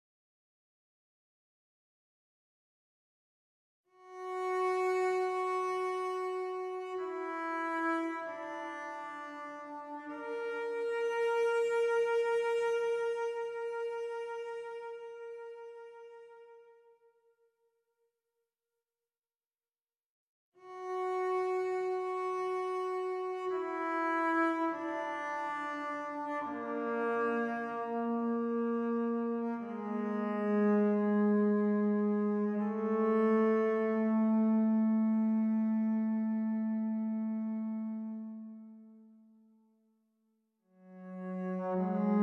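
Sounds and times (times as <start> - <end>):
cello: 3.9 - 17.1, 20.6 - 39.0, 40.8 - 42.2.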